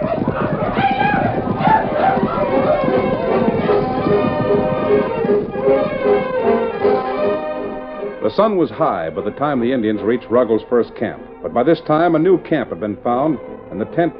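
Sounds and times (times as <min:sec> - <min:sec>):
people shouting: 0:00.0 - 0:05.2
several horses galloping: 0:00.0 - 0:14.1
speech: 0:08.4 - 0:14.1.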